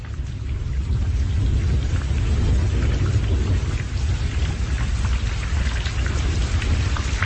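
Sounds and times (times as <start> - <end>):
heavy rain pouring at night: 0.0 - 7.2
low rumble, possibly thunder: 0.0 - 7.2.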